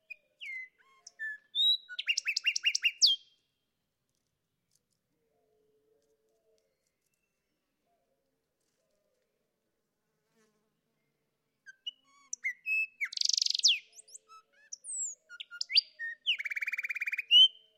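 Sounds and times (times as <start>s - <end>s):
Sinaloa Wren singing: 0.0s - 3.2s, 11.7s - 17.7s.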